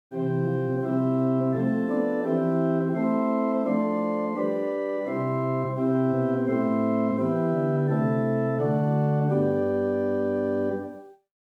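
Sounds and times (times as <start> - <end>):
pipe organ playing Swell Rohrflute 8 and Gemshorn 4 stops: 0.1 - 11.1.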